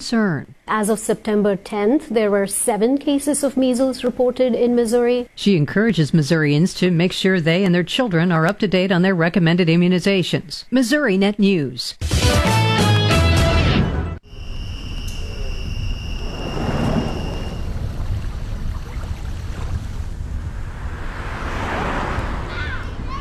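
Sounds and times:
speech: 0.0s - 12.6s
brief burst of music: 12.0s - 14.2s
steady road noise: 15.5s - 23.1s
motorcycle engine rumbling past on a road in summer: 16.0s - 23.1s.

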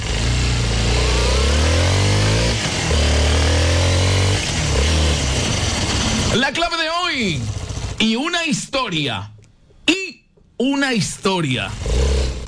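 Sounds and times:
motorcycle engine revving: 0.0s - 6.6s, 7.2s - 8.1s, 11.6s - 12.4s
speech: 6.3s - 9.3s, 10.6s - 12.4s.

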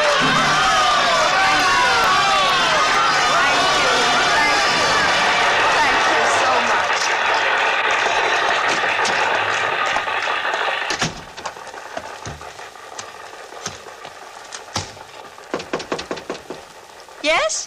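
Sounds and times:
excited cheering voices: 0.0s - 10.9s
large audience frenzied applause: 0.0s - 17.2s.

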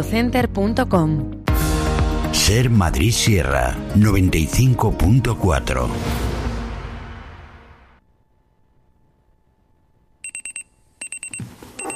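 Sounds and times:
speech: 0.0s - 1.4s, 2.3s - 6.3s
quiet hum: 8.0s - 11.9s
alarm clock electronic beeps: 10.2s - 11.9s.

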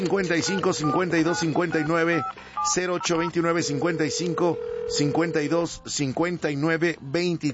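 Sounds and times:
telephone touch tones of a number being dialed: 0.0s - 5.6s
person speaking: 0.0s - 6.4s.

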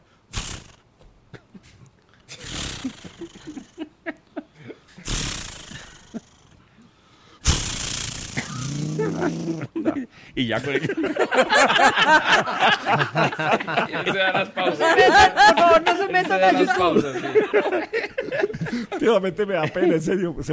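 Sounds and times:
voice imitating a chainsaw starting and running: 0.3s - 0.8s, 2.3s - 3.8s, 5.0s - 6.5s, 7.4s - 9.8s
laughter: 1.4s - 4.9s, 8.8s - 20.2s
speech: 9.2s - 18.0s, 18.8s - 20.5s.

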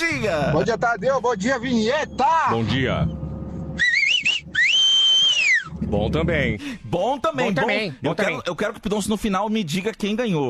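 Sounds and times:
speech: 0.0s - 3.2s, 5.8s - 10.4s
low rumble: 0.0s - 7.4s
pursed-lip whistling of a wavering high tune: 1.0s - 5.9s.

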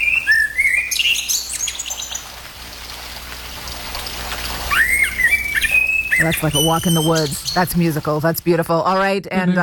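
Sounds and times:
common blackbird singing fluting whistled phrases: 0.0s - 2.3s, 4.7s - 8.0s
soft steady outdoor hiss: 0.0s - 9.6s
speech: 6.2s - 9.6s.

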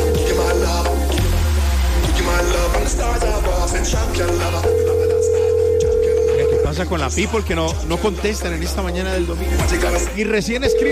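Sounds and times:
busy background of music or studio sound: 0.0s - 10.9s
electronic telephone ringback tone while calling: 4.6s - 6.8s, 10.7s - 10.9s
speech: 6.8s - 10.9s.

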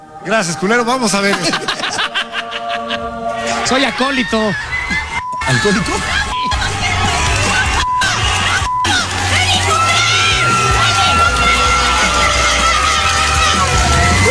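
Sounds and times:
speech: 0.2s - 1.8s, 3.6s - 4.7s, 5.5s - 6.2s
laughter: 0.2s - 14.2s
loud dense roar of crowd cheering and shouting: 1.2s - 14.2s
woman yelling in celebration of a soccer goal: 8.3s - 14.2s.

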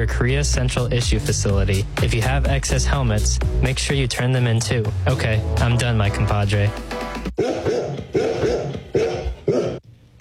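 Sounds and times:
speech: 0.0s - 7.5s
golden retrievers barking: 7.4s - 9.8s.

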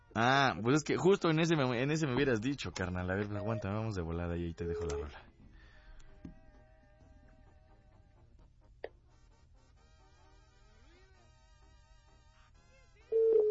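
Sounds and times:
speech: 0.2s - 5.3s
telephone line clicks: 4.7s - 5.2s
quiet telephone line hiss: 13.0s - 13.4s
loud steady telephone tone before voicemail: 13.1s - 13.4s.

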